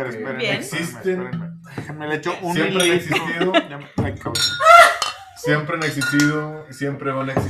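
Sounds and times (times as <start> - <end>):
people laughing: 0.0 - 1.1, 2.3 - 3.9, 4.6 - 6.0
speech: 0.0 - 4.7, 5.4 - 7.4
glasses clinking in a toast: 2.4 - 3.5, 4.4 - 6.5.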